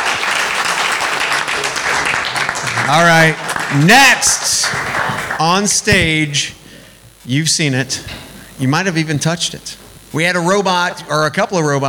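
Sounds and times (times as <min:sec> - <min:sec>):
crowd applauding: 0:00.0 - 0:05.5
speech: 0:02.9 - 0:06.6, 0:07.2 - 0:11.8.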